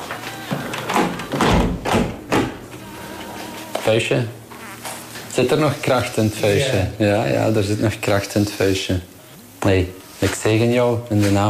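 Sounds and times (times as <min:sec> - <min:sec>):
windows being closed: 0:00.0 - 0:02.8
steady noise: 0:00.0 - 0:11.4
speech: 0:03.9 - 0:04.4, 0:05.4 - 0:11.4.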